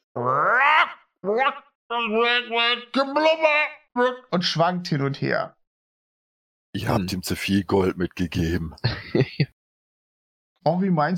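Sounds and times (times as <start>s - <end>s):
voice imitating a frog-like Bullywug creature croaking: 0.0s - 4.4s
speech: 0.2s - 0.5s, 1.3s - 5.6s, 6.8s - 9.4s, 10.6s - 11.1s
laughter: 8.7s - 9.5s.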